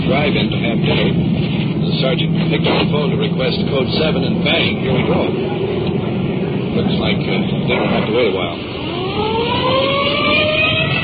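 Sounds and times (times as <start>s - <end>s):
police patrol car heavy engine rumble: 0.0s - 11.0s
road noise: 0.0s - 11.0s
speech: 0.3s - 5.8s, 6.8s - 9.9s
police patrol car siren wailing on a code 3 emergency run: 7.7s - 11.0s.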